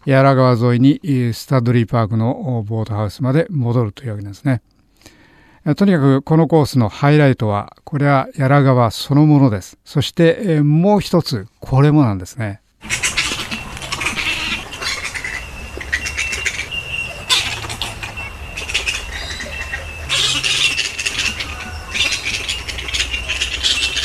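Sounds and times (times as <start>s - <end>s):
speech: 0.0s - 13.0s
flying foxes screeching along a walking track in a riverside park: 12.8s - 24.0s.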